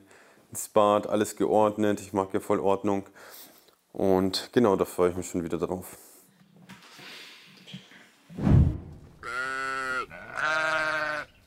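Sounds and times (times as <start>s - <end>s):
speech: 0.5s - 6.1s
dull thump: 8.4s - 9.2s
sheep bleating: 9.2s - 11.4s.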